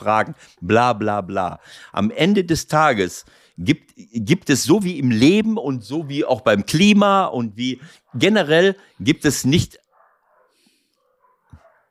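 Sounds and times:
speech: 0.0 - 9.8
dogs barking downstairs through walls: 7.8 - 9.0, 9.8 - 11.8.

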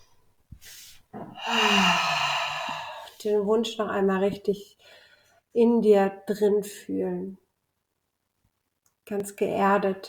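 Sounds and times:
deep breath in and out: 0.6 - 3.2
speech: 3.2 - 7.4, 9.1 - 10.0.

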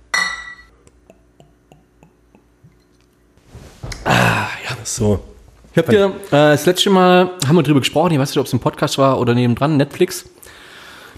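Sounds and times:
glasses clinking in a toast: 0.1 - 0.7
speech: 4.8 - 10.4.

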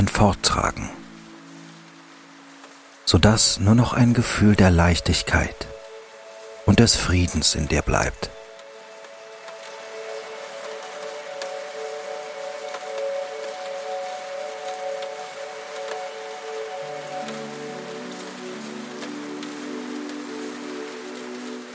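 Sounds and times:
rain falling on a street: 0.0 - 21.7
speech: 0.1 - 1.0, 3.1 - 5.7, 6.7 - 8.4.

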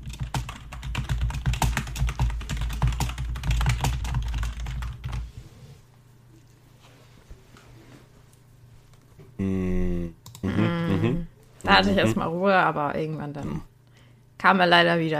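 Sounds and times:
rapid typing on a computer keyboard as a message is written: 0.0 - 5.2
quiet low noise: 0.1 - 15.1
speech: 11.7 - 13.7, 14.4 - 15.1.

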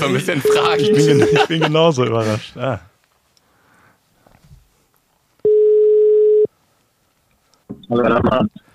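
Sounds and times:
laughter: 0.0 - 2.5
speech: 0.0 - 2.9, 7.9 - 8.6
ringback tone of an outgoing telephone call: 0.4 - 1.4, 5.5 - 6.5.

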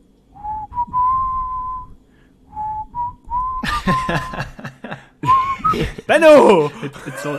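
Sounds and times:
person whistling a slow melodic tune: 0.4 - 4.5, 5.2 - 6.0
laughter: 3.6 - 7.3
speech: 3.9 - 4.5, 6.1 - 7.3.

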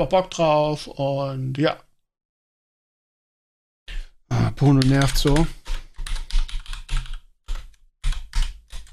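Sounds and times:
speech: 0.0 - 1.9, 4.6 - 5.6
typing a message on a computer keyboard: 4.6 - 8.9.

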